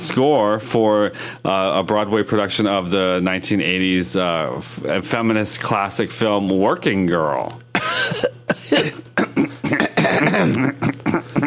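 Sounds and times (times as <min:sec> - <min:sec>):
speech: 0:00.0 - 0:07.6
woman coughing in short raspy bursts: 0:07.7 - 0:11.4
woman clearing her throat: 0:07.8 - 0:11.4.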